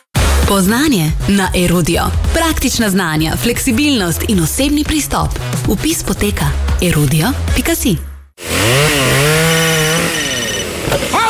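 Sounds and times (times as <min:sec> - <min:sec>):
speech: 0:00.5 - 0:08.6
chainsaw cutting wood: 0:08.4 - 0:11.2.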